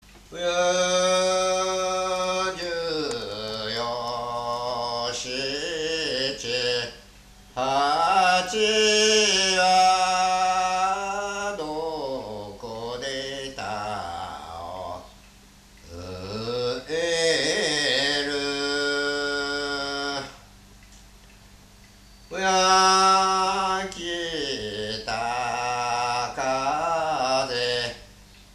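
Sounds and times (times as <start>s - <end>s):
Japanese minyo work song singing from Yokoshibahikari Kido: 0.0s - 20.6s, 22.2s - 28.2s.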